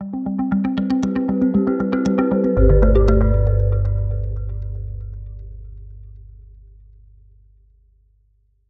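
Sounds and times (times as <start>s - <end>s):
minimal gamelan short arpeggio: 1.1s - 5.6s.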